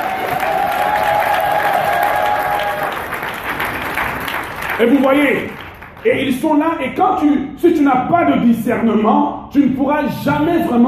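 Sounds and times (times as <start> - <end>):
congregation applauding during a church service: 0.0 - 6.4
speech: 4.8 - 10.8.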